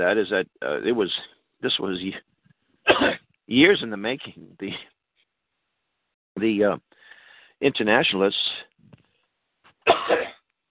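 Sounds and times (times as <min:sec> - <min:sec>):
speech: 0:00.0 - 0:04.9, 0:06.4 - 0:07.0, 0:07.6 - 0:08.7, 0:09.8 - 0:10.3
harsh cough: 0:02.9 - 0:03.2, 0:09.8 - 0:10.4
faint catch of breath: 0:07.0 - 0:07.6.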